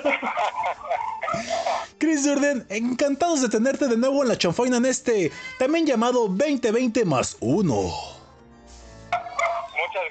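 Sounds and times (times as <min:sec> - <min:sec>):
dogs barking: 0:00.0 - 0:01.9, 0:09.1 - 0:09.8
laughter: 0:00.0 - 0:01.9
speech: 0:02.1 - 0:08.1.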